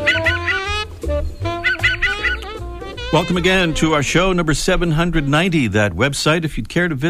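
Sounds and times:
Canada Jay harsh nasal calls: 0:00.0 - 0:05.8
speech: 0:03.1 - 0:07.0.

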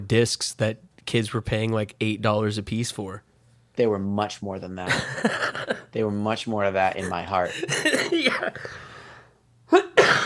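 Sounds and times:
speech: 0:00.1 - 0:08.9, 0:09.7 - 0:10.2
harsh coughing: 0:07.0 - 0:08.9, 0:09.7 - 0:10.2.

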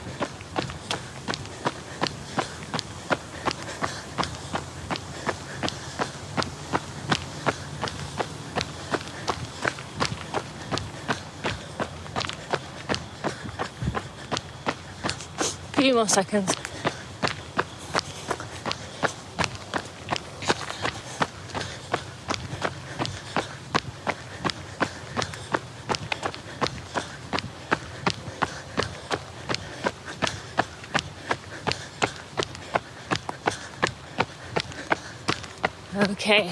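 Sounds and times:
footsteps walking outdoors: 0:00.0 - 0:36.5
speech: 0:16.0 - 0:16.6, 0:36.3 - 0:36.5.

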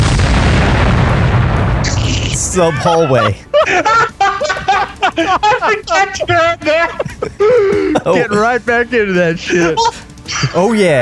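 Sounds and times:
massive roaring explosion ripping a hole in a ceiling: 0:00.0 - 0:02.9
laughter: 0:02.4 - 0:08.6
speech: 0:02.6 - 0:04.1, 0:04.8 - 0:11.0.

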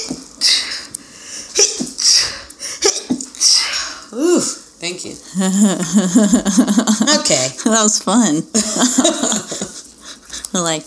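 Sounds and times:
sharp breathy sneezes with hissing exhales: 0:01.5 - 0:04.6
speech: 0:04.4 - 0:09.4, 0:10.6 - 0:10.8
laughter: 0:05.3 - 0:07.5, 0:08.6 - 0:10.3.

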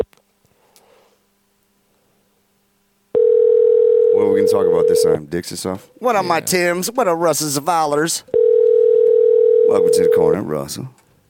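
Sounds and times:
loud steady ringing tone of an outgoing phone call: 0:03.2 - 0:05.2, 0:08.3 - 0:10.4
speech: 0:04.5 - 0:08.4, 0:09.7 - 0:11.0.

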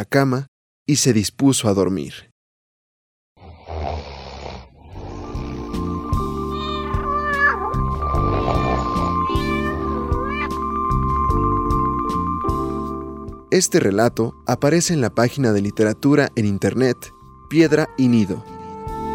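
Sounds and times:
speech: 0:00.0 - 0:02.3, 0:13.5 - 0:18.6
steady low droning musical background: 0:04.9 - 0:19.1
cat meowing in drawn-out rising and falling cries: 0:06.5 - 0:10.7.

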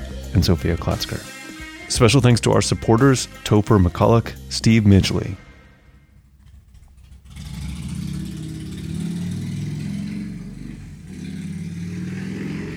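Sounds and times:
speech: 0:00.3 - 0:05.4
loud motorcycle engine revving: 0:06.2 - 0:12.7.

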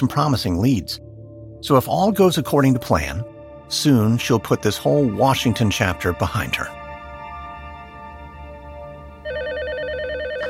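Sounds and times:
speech: 0:00.0 - 0:01.0, 0:01.6 - 0:06.8
electronic telephone ringing with a warbling trill: 0:09.2 - 0:10.4.

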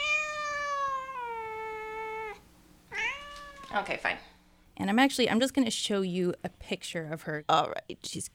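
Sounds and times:
black female cat meowing: 0:00.0 - 0:03.8
speech: 0:03.7 - 0:08.3.

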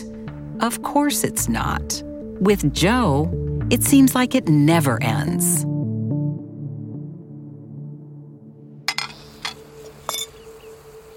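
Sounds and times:
speech: 0:00.6 - 0:05.7
dirty dishes and glasses clinking as they are collected from an outdoor dining table in Los Angeles: 0:08.9 - 0:10.4.

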